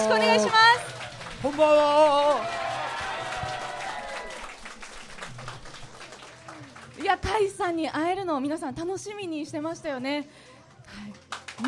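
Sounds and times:
speech: 0.0 - 0.8, 1.4 - 2.6, 7.0 - 11.6
sustained audience applause: 0.0 - 7.2.

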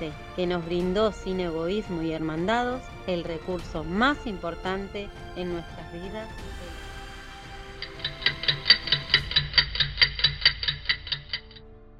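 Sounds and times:
speech: 0.0 - 6.8
clock ticking: 7.6 - 11.6.

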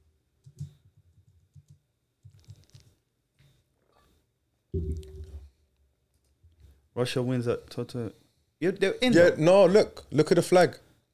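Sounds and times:
computer keyboard typing a search: 0.4 - 2.9
speech: 7.0 - 10.8.

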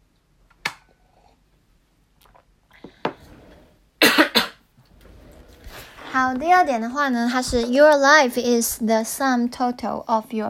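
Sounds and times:
person coughing dryly: 4.0 - 4.6
speech: 6.2 - 10.4.

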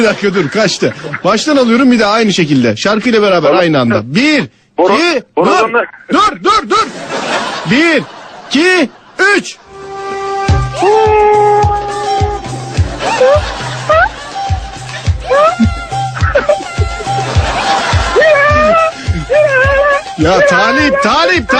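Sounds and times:
speech: 0.0 - 9.6, 13.2 - 13.6, 20.2 - 21.5
steady thumping music beat: 10.3 - 21.5
person imitating a kitten with high wavering meows: 10.7 - 12.4, 15.2 - 15.8, 18.2 - 21.5
snickering laughter: 12.9 - 21.0.

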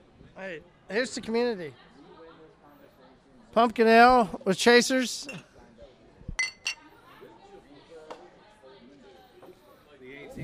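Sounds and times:
murmuring voices and low chatter: 0.0 - 10.4
speech: 0.4 - 1.9, 3.6 - 5.5
beer glasses clinking in a toast: 6.4 - 6.9.

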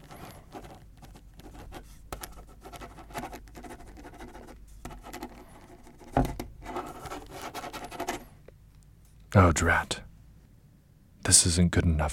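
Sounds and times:
pen writing on paper: 0.0 - 8.3
speech: 9.4 - 10.0, 11.3 - 12.1.

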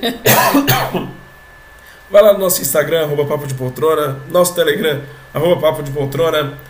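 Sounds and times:
speech: 0.0 - 1.1, 2.1 - 6.6
person coughing: 0.0 - 1.2.

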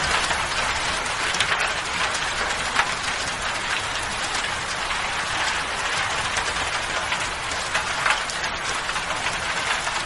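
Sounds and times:
natural rainfall falling steadily and densely: 0.0 - 10.0.

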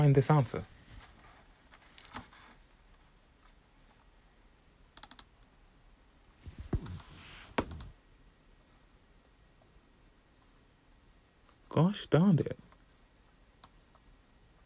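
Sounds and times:
speech: 0.0 - 0.8, 11.8 - 12.7
faint hiss: 0.0 - 14.6
keyboard taps and typing: 5.0 - 5.3, 6.6 - 7.9
computer clicks: 5.0 - 5.4, 6.6 - 8.0, 13.6 - 14.0.

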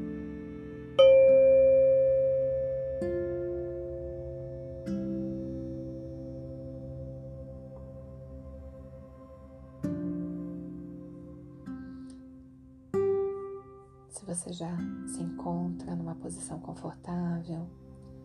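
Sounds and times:
meditation bell struck and ringing: 1.0 - 5.4
speech: 14.4 - 17.8.

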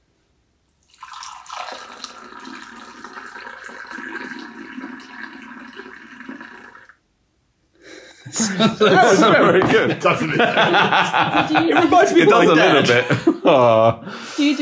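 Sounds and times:
chai pouring into cups: 0.7 - 7.0
laughter: 8.2 - 14.0
speech: 8.3 - 14.5.

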